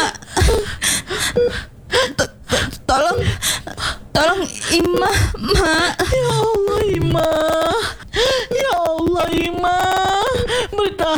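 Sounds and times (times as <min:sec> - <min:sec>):
person with chest pain gasping for breath: 0:00.0 - 0:06.6, 0:07.7 - 0:08.5, 0:10.3 - 0:10.8
person moaning and whimpering: 0:00.0 - 0:11.1
speech: 0:04.2 - 0:06.4.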